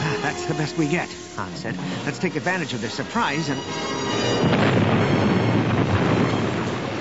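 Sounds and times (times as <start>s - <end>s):
speech: 0.3s - 5.2s
massive sci-fi starship explosion effect with debris crackle: 4.3s - 7.0s.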